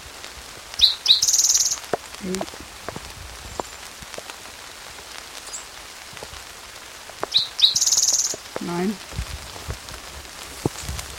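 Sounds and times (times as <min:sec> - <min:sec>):
rain pattering: 0:00.0 - 0:11.1
bird chirps: 0:00.8 - 0:01.8, 0:07.3 - 0:08.4
speech: 0:02.2 - 0:02.8, 0:08.6 - 0:09.2.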